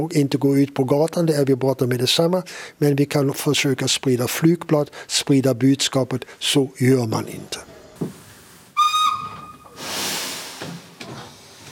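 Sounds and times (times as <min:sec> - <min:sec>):
speech: 0:00.0 - 0:08.2
steam train whistle on a train heading to Munich: 0:08.8 - 0:09.8
hiss of escaping steam: 0:09.6 - 0:11.7.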